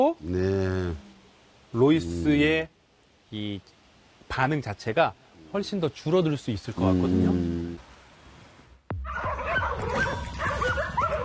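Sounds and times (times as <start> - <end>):
speech: 0.0 - 1.1, 1.7 - 7.8
several dogs barking and yipping at a motorbike: 9.0 - 11.2.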